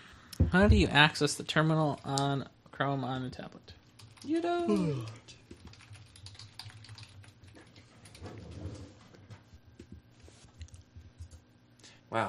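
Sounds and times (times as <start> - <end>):
speech: 0.5 - 5.4
typing on a computer keyboard: 4.0 - 8.4.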